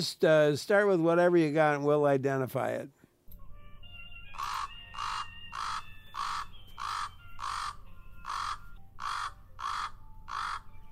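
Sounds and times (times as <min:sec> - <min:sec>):
speech: 0:00.0 - 0:03.0
common raven croaking: 0:04.4 - 0:10.8.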